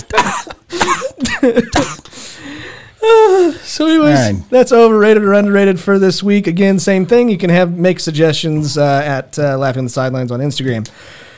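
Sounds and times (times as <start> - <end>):
person coughing: 0.0 - 2.3
speech: 0.1 - 2.0, 4.2 - 11.2.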